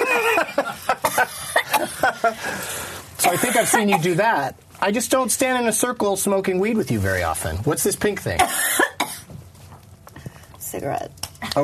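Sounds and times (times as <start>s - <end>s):
single sharp cough: 1.0s - 2.2s, 3.2s - 4.2s, 8.4s - 9.3s
speech: 3.2s - 8.8s, 10.8s - 11.6s.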